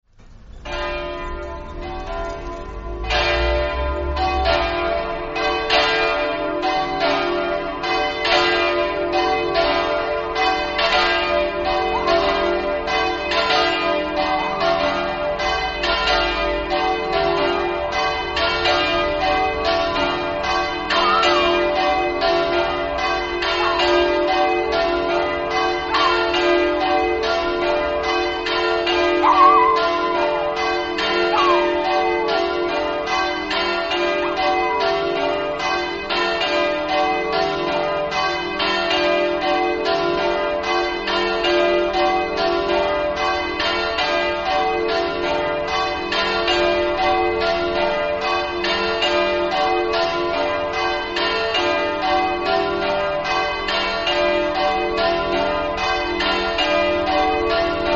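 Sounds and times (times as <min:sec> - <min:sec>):
bells ringing in Villegnove: 0:00.2 - 0:57.9.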